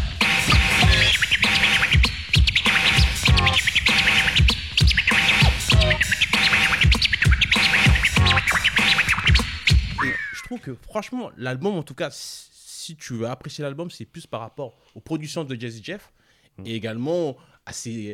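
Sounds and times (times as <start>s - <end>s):
steady beat: 0.0s - 10.4s
turntable scratches imitating chirping birds: 0.0s - 10.6s
speech: 10.9s - 18.1s.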